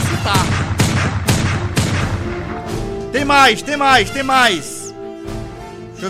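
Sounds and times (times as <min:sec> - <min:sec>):
gunshots: 0:00.0 - 0:02.6
speech: 0:03.3 - 0:04.7.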